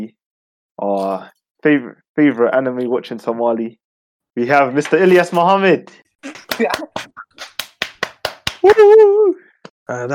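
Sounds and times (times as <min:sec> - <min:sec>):
speech: 0:00.8 - 0:03.8, 0:04.4 - 0:07.5, 0:08.6 - 0:10.1
person clapping hands: 0:06.3 - 0:09.0
person whooping: 0:08.6 - 0:09.4.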